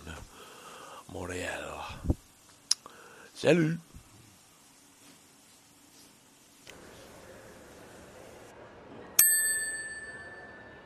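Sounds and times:
faint hum: 0:00.0 - 0:10.8
speech: 0:01.1 - 0:02.2, 0:03.4 - 0:03.9
bright bicycle bell ding: 0:09.2 - 0:10.8.

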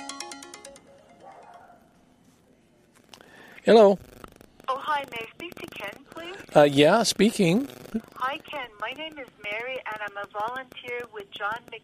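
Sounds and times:
phone ringtone from an unknown caller: 0:00.0 - 0:01.7
speech: 0:03.6 - 0:04.1, 0:05.0 - 0:11.8.

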